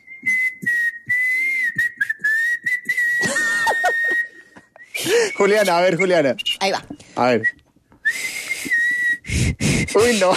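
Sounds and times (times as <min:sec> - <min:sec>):
person whistling a rock melody: 0:00.0 - 0:05.5, 0:08.0 - 0:09.8
speech: 0:05.4 - 0:07.5, 0:10.0 - 0:10.3
breathy bursts: 0:08.1 - 0:10.3.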